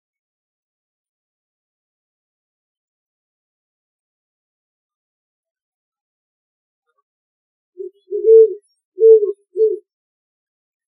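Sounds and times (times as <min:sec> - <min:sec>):
great horned owl giving low four-note hoot series: 0:07.8 - 0:09.8.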